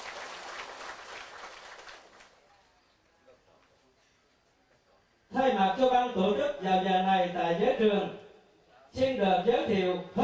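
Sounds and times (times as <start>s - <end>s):
crowd of Buddhist followers applauding at a morning closing ceremony: 0.0s - 2.5s
speech: 5.4s - 8.2s, 9.0s - 10.2s.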